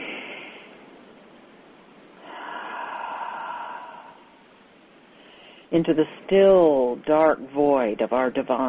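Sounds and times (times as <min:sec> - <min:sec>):
deep inhale and exhale through the nose: 0:00.0 - 0:00.8, 0:02.2 - 0:04.5, 0:05.1 - 0:05.7
speech: 0:05.7 - 0:08.6.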